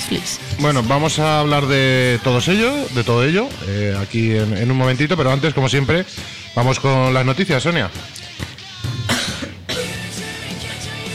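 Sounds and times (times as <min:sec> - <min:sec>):
speech: 0:00.1 - 0:08.2
throat clearing: 0:09.0 - 0:10.0
person coughing: 0:09.0 - 0:10.1.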